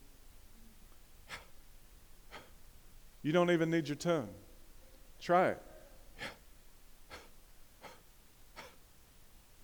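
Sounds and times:
person breathing in and out slowly: 1.2s - 1.6s, 2.3s - 2.6s, 6.1s - 6.5s, 7.1s - 8.8s
speech: 3.2s - 4.4s, 5.2s - 6.4s.

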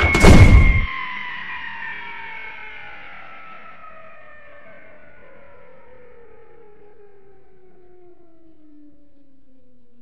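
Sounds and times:
heavy house door slamming shut: 0.0s - 0.9s.

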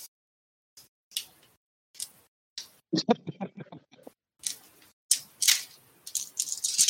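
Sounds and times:
speech: 2.9s - 3.6s
laughter: 3.0s - 4.1s
dice grabbed and rolled during a tabletop role-playing game: 4.4s - 6.8s.

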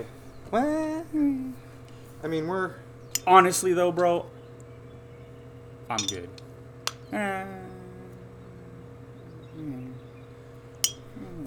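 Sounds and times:
speech: 0.0s - 4.4s, 5.9s - 6.4s, 7.1s - 7.6s, 9.6s - 10.0s
faint voices murmuring: 0.0s - 11.4s
glass stopper clinking against a bottle: 6.0s - 6.4s, 10.8s - 11.1s.

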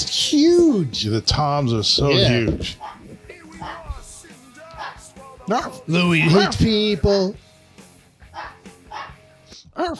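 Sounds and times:
speech: 0.1s - 2.8s, 5.5s - 7.4s, 9.8s - 9.9s
dog barking: 2.8s - 4.0s, 4.7s - 5.1s, 6.1s - 6.6s, 8.3s - 9.3s.

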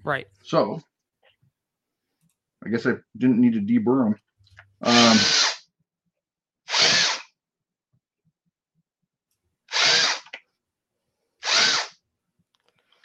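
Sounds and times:
speech: 0.0s - 0.9s, 2.6s - 4.2s, 4.8s - 5.4s
power drill boring out holes: 4.8s - 5.7s, 6.7s - 7.4s, 9.7s - 10.4s, 11.4s - 12.0s.

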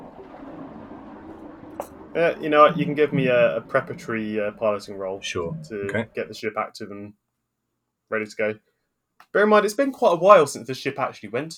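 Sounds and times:
distant toilet flushing: 0.0s - 6.5s
speech: 1.8s - 7.2s, 8.1s - 8.7s, 9.3s - 11.5s.

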